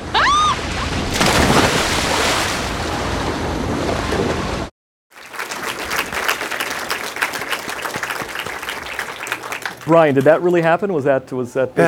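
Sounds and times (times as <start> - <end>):
ocean water and surf rushing: 0.0 - 4.7
churning splashy water with crackling bursts: 0.5 - 7.3
speech: 9.9 - 11.8.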